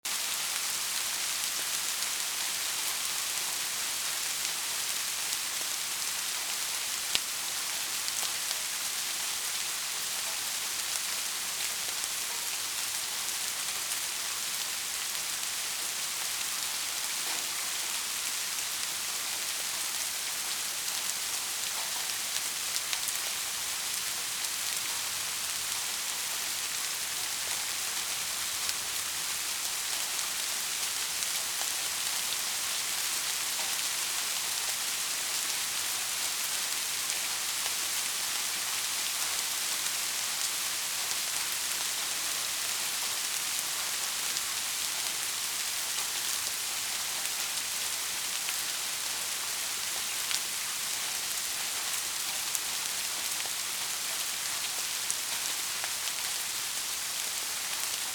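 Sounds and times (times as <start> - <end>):
rain: 0.0 - 58.1.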